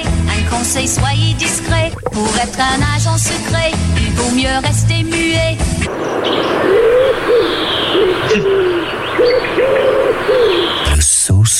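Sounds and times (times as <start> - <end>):
noisy outdoor background: 0.0 - 11.5
speech: 0.6 - 11.5
pigeon cooing in low rolling calls: 0.8 - 4.8, 5.9 - 11.0
faint higher chirps from other birds: 5.9 - 11.0.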